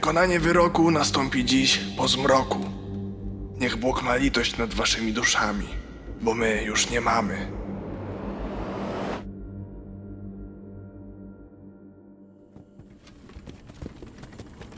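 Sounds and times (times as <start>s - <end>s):
speech: 0.0s - 2.8s, 3.6s - 7.6s
low rumbling drone: 2.7s - 12.4s
whooshing noise: 6.5s - 9.3s
horse hooves clopping pulling a barred wagon over a bumpy forest road: 12.5s - 14.7s.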